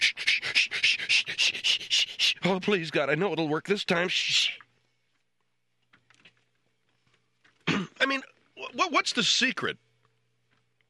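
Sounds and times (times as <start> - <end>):
voice imitating a penis pump being worked: 0.0 - 2.7, 4.1 - 4.6
speech: 2.4 - 4.4, 9.2 - 9.9.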